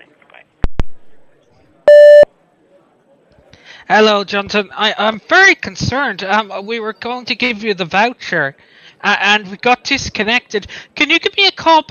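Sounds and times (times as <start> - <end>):
voicemail recording beep, mid-high electronic tone: 1.9 - 2.3
speech: 3.9 - 11.8.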